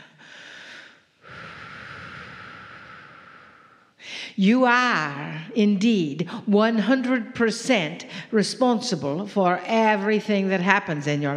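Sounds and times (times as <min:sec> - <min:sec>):
deep breath during a guided group session: 0:00.0 - 0:04.4
speech: 0:04.4 - 0:11.3.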